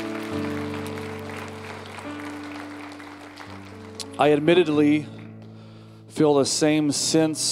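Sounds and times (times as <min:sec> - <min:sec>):
crowd applause: 0:00.0 - 0:04.8
soft keyboard chords: 0:00.0 - 0:07.5
speech: 0:04.2 - 0:05.2, 0:06.2 - 0:07.5.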